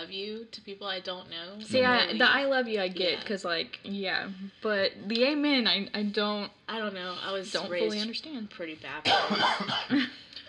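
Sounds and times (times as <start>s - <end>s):
speech: 0.1s - 10.3s
person coughing: 9.1s - 10.1s.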